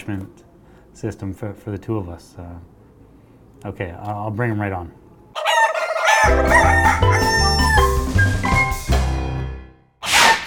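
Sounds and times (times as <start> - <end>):
speech: 0.0 - 2.8, 3.6 - 5.0, 6.2 - 7.5
rooster crowing: 5.3 - 8.0
low steady musical backing: 6.2 - 9.8.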